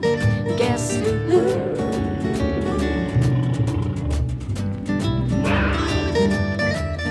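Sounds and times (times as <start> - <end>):
tiger growling in a deep rumbling snarl: 0.9 - 6.8
steady tonal music: 1.1 - 7.0.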